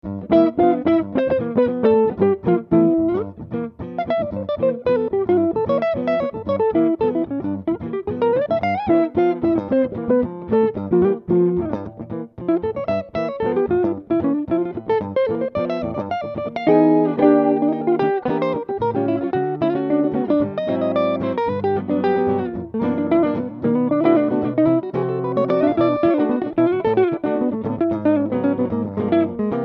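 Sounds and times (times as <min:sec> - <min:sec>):
Hohner guitar: 0:00.0 - 0:29.6.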